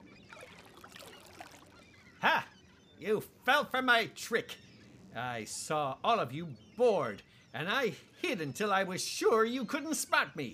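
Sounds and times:
water splashing and gurgling: 0.0 - 1.9
speech: 3.0 - 4.6, 5.2 - 10.5.

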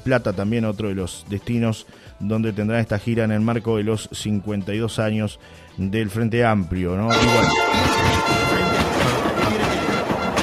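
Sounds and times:
speech: 0.0 - 8.4
train sound effect rumble and rail clatter: 7.1 - 10.4.

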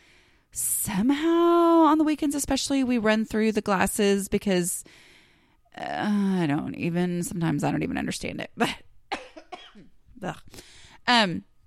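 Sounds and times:
speech: 0.9 - 5.0, 5.8 - 8.9, 9.8 - 11.5
person coughing: 9.1 - 10.0.

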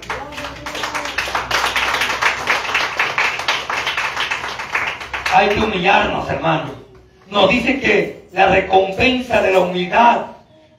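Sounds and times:
crowd clapping their hands in applause: 0.0 - 6.1
speech: 5.3 - 10.3.

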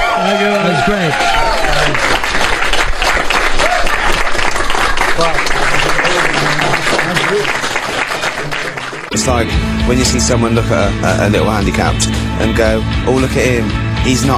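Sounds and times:
cheers and whoops: 0.0 - 2.2, 3.4 - 4.3
large audience applauding for a guest: 0.0 - 9.4
speech: 0.2 - 2.4, 9.1 - 14.3.

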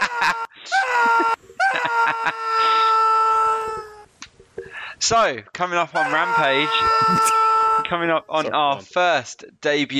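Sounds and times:
person screaming high-pitched wails: 0.0 - 4.0, 6.0 - 8.0
speech: 5.1 - 9.9.

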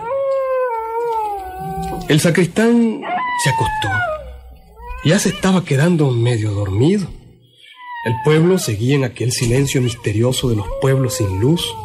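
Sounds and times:
coyote howling: 0.0 - 2.2, 2.9 - 5.6, 7.7 - 11.8
speech: 2.1 - 4.2, 5.0 - 7.2, 8.0 - 11.8.

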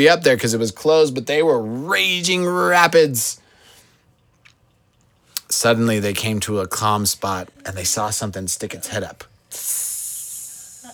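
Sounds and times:
speech: 0.0 - 3.4, 5.5 - 9.8
water snake hissing: 9.6 - 10.9.

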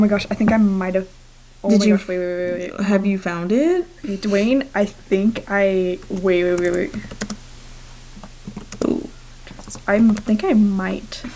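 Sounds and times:
speech: 0.0 - 7.4, 9.9 - 11.3
typing on a computer keyboard: 6.0 - 7.4, 8.2 - 8.9.

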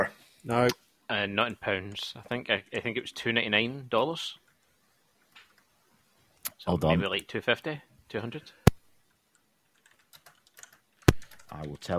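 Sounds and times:
speech: 0.0 - 4.4, 6.6 - 8.6, 11.5 - 11.9
typing on a computer keyboard: 9.3 - 11.9.

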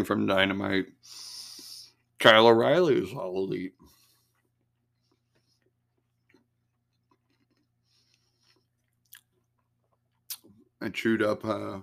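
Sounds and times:
speech: 0.0 - 1.3, 2.2 - 4.0, 10.8 - 11.8
chewing and crunching chocolate chip cookie: 4.0 - 10.8.

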